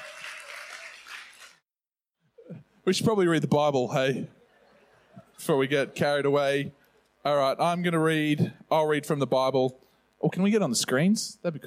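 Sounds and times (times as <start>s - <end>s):
audience cheering and clapping: 0.0s - 1.6s
speech: 2.5s - 4.4s, 5.4s - 11.6s.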